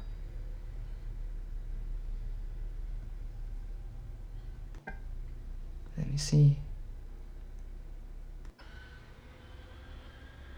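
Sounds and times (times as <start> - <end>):
snow blower small engine running outdoors: 0.0 - 10.5
speech: 6.2 - 6.6.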